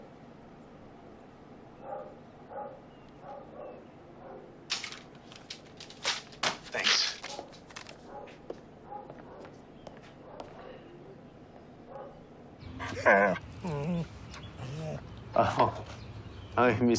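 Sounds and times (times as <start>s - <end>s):
dog barking: 1.8s - 4.5s, 7.3s - 9.6s, 10.2s - 11.2s, 11.9s - 12.3s
dog whimpering and yipping excitedly: 12.8s - 15.0s
speech: 13.1s - 13.4s, 15.4s - 15.8s, 16.6s - 16.9s.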